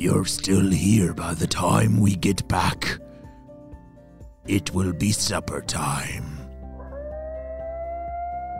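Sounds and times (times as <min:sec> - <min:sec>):
speech: 0:00.0 - 0:03.0, 0:04.5 - 0:06.4
coyote howling: 0:06.8 - 0:08.5.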